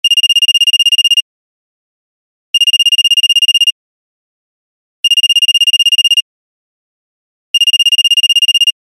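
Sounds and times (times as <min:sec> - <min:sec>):
phone ringtone: 0:00.1 - 0:01.2, 0:02.6 - 0:03.8, 0:05.1 - 0:06.3, 0:07.6 - 0:08.7.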